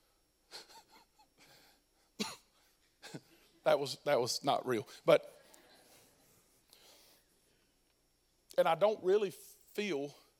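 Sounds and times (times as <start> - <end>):
harsh raspy coughs: 2.2 - 3.3
speech: 3.1 - 5.4, 8.6 - 10.2.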